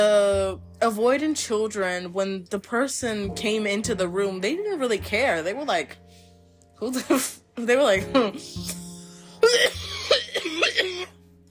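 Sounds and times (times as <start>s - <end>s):
speech: 0.0s - 6.2s, 6.8s - 8.8s, 9.4s - 11.2s
deep harsh cough with throaty rasping hacks: 8.6s - 11.2s.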